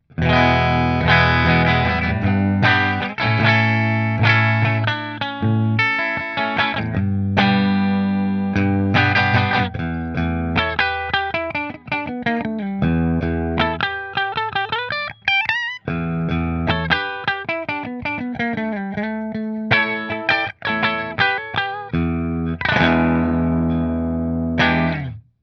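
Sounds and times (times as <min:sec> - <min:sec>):
guitar with bridge pickup playing: 0:00.0 - 0:25.3.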